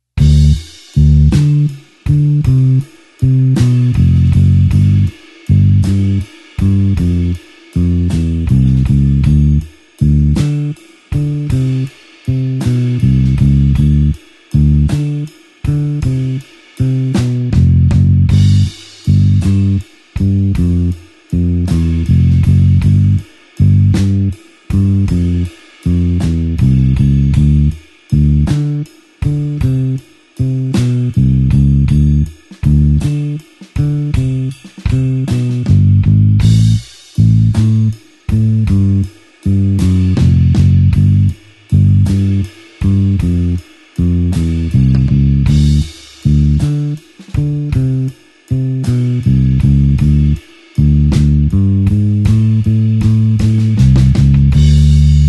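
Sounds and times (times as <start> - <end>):
slow blues bassline in D: 0.0 - 55.2.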